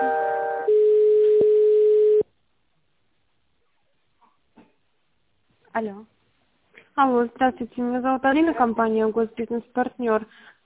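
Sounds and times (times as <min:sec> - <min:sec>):
telephone line tone while a call is transferred: 0:00.0 - 0:02.2
speech: 0:05.8 - 0:06.2, 0:07.0 - 0:10.6.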